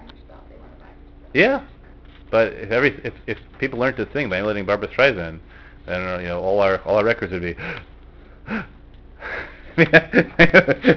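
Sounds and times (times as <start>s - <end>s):
speech: 1.3s - 1.7s, 2.3s - 7.9s, 8.5s - 10.9s
heavy breathing: 5.4s - 5.9s, 7.6s - 9.8s
laughter: 9.3s - 10.9s.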